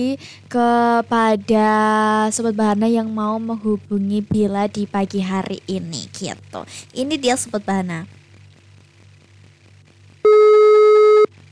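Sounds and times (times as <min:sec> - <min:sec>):
speech: 0:00.0 - 0:08.2
faint low hum: 0:00.0 - 0:11.5
telephone ringing tone: 0:10.3 - 0:11.3.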